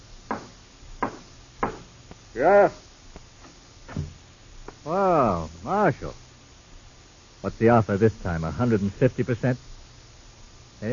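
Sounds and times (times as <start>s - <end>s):
firm knocks on a door: 0.3s - 1.9s
speech: 2.4s - 2.9s, 4.8s - 6.2s, 7.4s - 9.7s.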